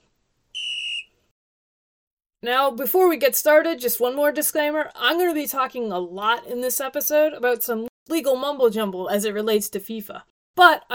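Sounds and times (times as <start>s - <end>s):
whistle marking an intermission: 0.6s - 1.3s
speech: 2.4s - 10.9s.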